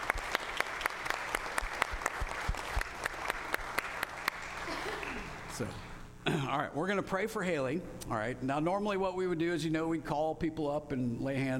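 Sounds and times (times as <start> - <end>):
crowd applauding in a large room: 0.0 - 5.7
speech: 5.6 - 11.5.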